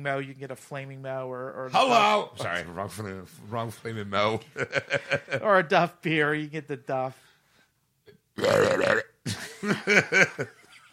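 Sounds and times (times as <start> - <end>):
speech: 0.0 - 7.3, 8.4 - 9.0, 9.6 - 10.6
laughter: 4.4 - 5.4, 9.3 - 10.9
person doing a vocal impression of a character's burp: 8.1 - 9.2
quick rhythmic croaking belch sounds: 8.4 - 9.2.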